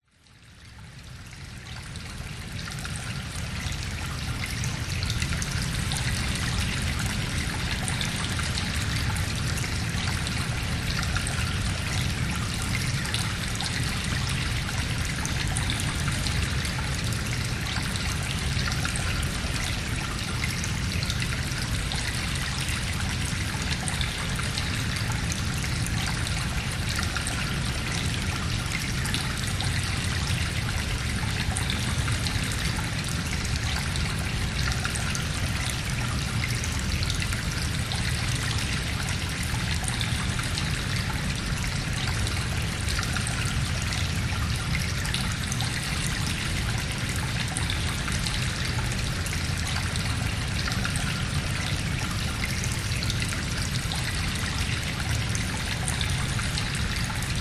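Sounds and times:
reverberant water stream flowing in a cave: 0:00.0 - 0:57.3.

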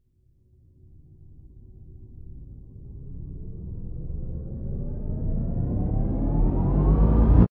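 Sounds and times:
short subtle dark sound design riser: 0:04.6 - 0:07.5.

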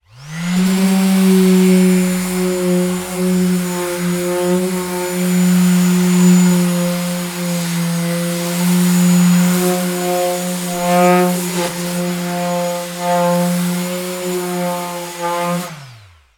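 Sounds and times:
industrial electric orbital sander sanding wooden door: 0:00.0 - 0:16.2.

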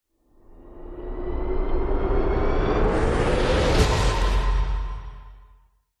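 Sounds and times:
tense cinematic riser: 0:00.5 - 0:05.6
dramatic hard hitting hit: 0:02.9 - 0:05.6.

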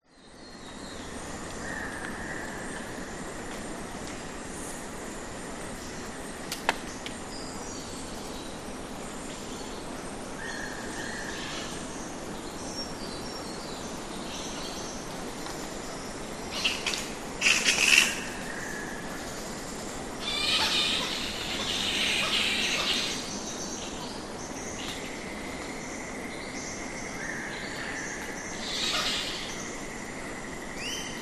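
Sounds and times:
flying fox bats in trees in the evening in Australia: 0:00.0 - 0:31.2.

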